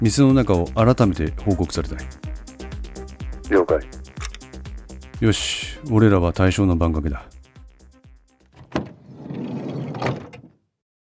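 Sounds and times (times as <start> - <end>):
speech: 0.0 - 2.5, 3.5 - 4.0, 5.2 - 7.3
car door latch click: 4.2 - 4.4, 8.6 - 10.5
car door swinging open: 8.6 - 10.5
firm thump: 8.6 - 10.5
quick mechanical clunks: 8.6 - 10.5.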